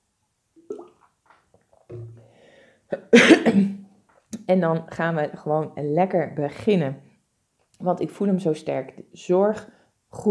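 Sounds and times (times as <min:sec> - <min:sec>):
wet mouth sounds: 0:00.6 - 0:02.2
sipping and swallowing water: 0:00.6 - 0:02.4
breathy throat clearing: 0:02.9 - 0:03.8
speech: 0:02.9 - 0:03.8, 0:04.5 - 0:07.1, 0:07.8 - 0:10.3.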